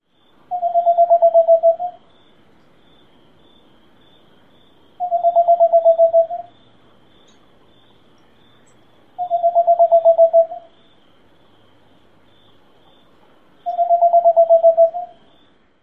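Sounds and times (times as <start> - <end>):
Whiskered Screech-Owl tooting: 0.5 - 2.0, 5.0 - 6.5, 9.2 - 10.7, 13.6 - 15.2.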